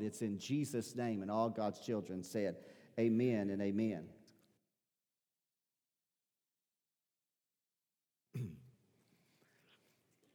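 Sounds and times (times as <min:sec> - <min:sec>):
speech: 0:00.0 - 0:04.2
person coughing: 0:08.3 - 0:08.8.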